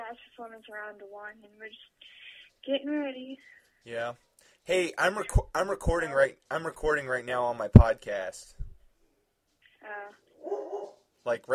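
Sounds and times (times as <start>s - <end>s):
speech: 0.1s - 8.6s, 9.8s - 11.5s
dog barking: 10.4s - 11.1s.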